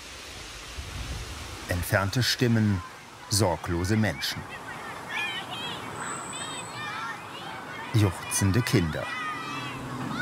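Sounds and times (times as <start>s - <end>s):
wind rustling trees in a park: 0.0s - 10.2s
speech: 1.7s - 4.6s, 7.9s - 9.2s.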